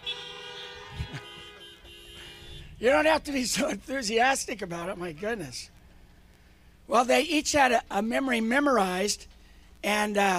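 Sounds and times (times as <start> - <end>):
car horn honking: 0.0 - 3.4
speech: 2.8 - 5.8, 6.9 - 10.3.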